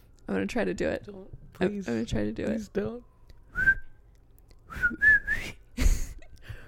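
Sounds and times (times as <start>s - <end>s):
speech: 0.3s - 3.7s
person whistling a cartoon theme tune: 3.5s - 3.9s, 4.7s - 5.6s.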